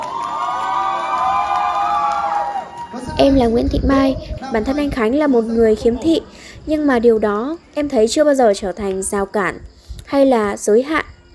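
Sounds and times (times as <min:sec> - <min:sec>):
excited shouts and whoops: 0:00.0 - 0:03.5
large crowd applauding: 0:00.0 - 0:03.7
large crowd cheering: 0:00.0 - 0:04.8
speech: 0:03.2 - 0:11.1.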